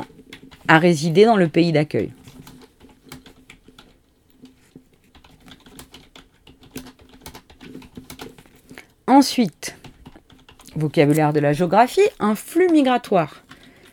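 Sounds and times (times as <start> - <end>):
fingers typing on a computer keyboard: 0.0 - 0.7, 2.1 - 8.9, 9.7 - 11.0, 12.4 - 13.9
speech: 0.7 - 2.2, 9.2 - 9.8, 10.8 - 13.4.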